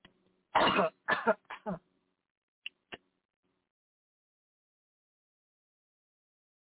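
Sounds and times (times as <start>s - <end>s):
harsh coughing: 0.6s - 1.8s
short faint throat-clearing clicks: 0.6s - 1.8s.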